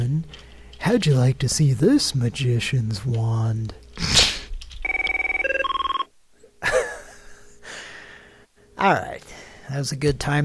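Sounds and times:
speech: 0.2 - 4.1, 8.8 - 10.4
office telephone ringing with electronic trill: 4.8 - 6.1.

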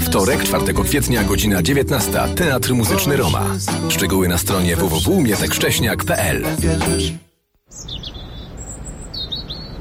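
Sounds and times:
speech: 0.1 - 8.1
small birds chirping in early spring: 7.7 - 9.8.

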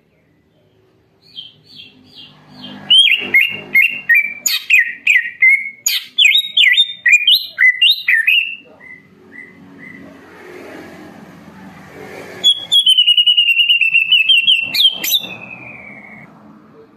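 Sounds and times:
Leafbird singing: 0.5 - 10.1, 12.4 - 16.3.

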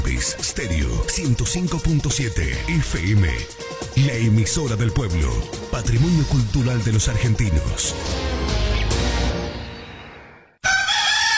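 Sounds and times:
speech: 0.2 - 8.5
rooster crowing to greet a new day: 10.6 - 11.3.

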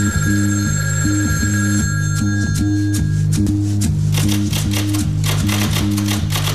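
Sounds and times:
telephone trilling ring after a number is dialled: 0.0 - 3.3
sharp clicking noises: 4.1 - 6.5.

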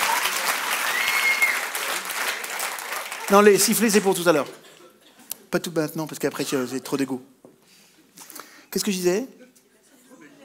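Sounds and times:
audience at a personal-development conference applauding: 0.0 - 4.5
speech: 3.3 - 4.7, 5.5 - 7.4, 8.7 - 9.4.

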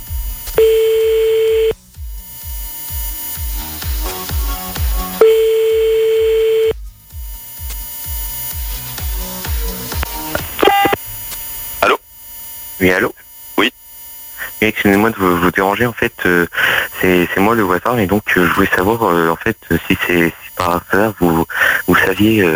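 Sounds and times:
rhythmic thumping: 0.0 - 12.0
ringback tone of an unanswered phone call: 0.6 - 1.8, 5.2 - 6.8, 10.6 - 11.0
speech: 12.8 - 13.2, 14.6 - 22.5.

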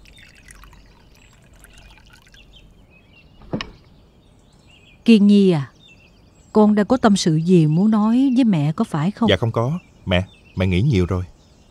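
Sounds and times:
water poured into a cup: 0.0 - 2.6
knock: 3.4 - 3.8
speech: 5.1 - 5.7, 6.6 - 11.3.

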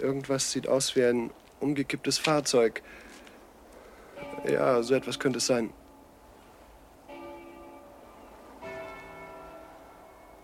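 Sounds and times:
speech: 0.0 - 3.2, 4.4 - 5.8
church bell ringing: 4.1 - 6.1, 7.0 - 10.4.

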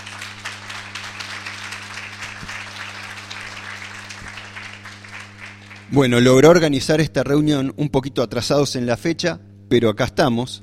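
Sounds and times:
audience applauding at a meeting: 0.0 - 6.3
low electrical hum: 0.0 - 10.6
speech: 5.9 - 10.6.

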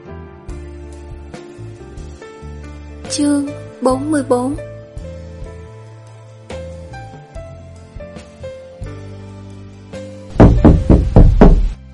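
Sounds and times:
speech: 3.1 - 4.7
knocking on a door: 10.3 - 11.8.

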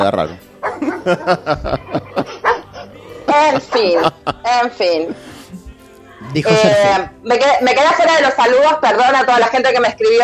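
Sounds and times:
speech: 0.0 - 2.3, 3.4 - 5.3, 6.2 - 10.2
dog barking: 0.3 - 1.5, 2.2 - 2.9, 3.5 - 4.3
laughter: 0.6 - 5.4, 6.2 - 7.1.

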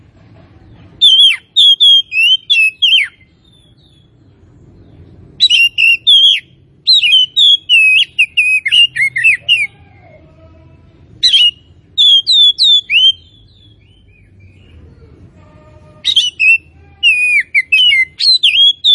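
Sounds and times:
Tretes oriental magpie-robin singing whistled phrases: 1.0 - 4.1, 5.4 - 9.7, 11.2 - 14.7, 16.0 - 18.9.

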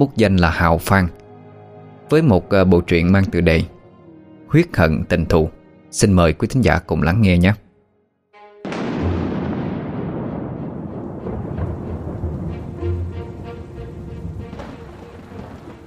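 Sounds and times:
speech: 0.0 - 1.2, 2.1 - 3.8, 4.5 - 7.6
thunder rumbling in a night storm: 8.6 - 15.8
heavy rain in a night storm: 8.7 - 15.8
strong wind in a night storm: 9.6 - 15.8.

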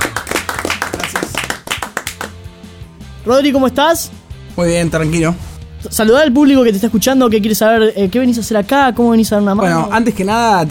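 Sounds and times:
audience clapping to welcome a guest: 0.0 - 2.5
speech: 3.2 - 10.6.

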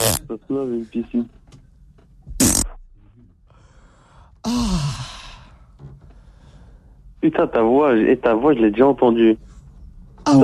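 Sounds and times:
loud rasping fart: 0.0 - 0.2, 2.3 - 2.8
speech: 0.3 - 1.4, 4.4 - 5.1, 7.2 - 9.5, 10.3 - 10.4.

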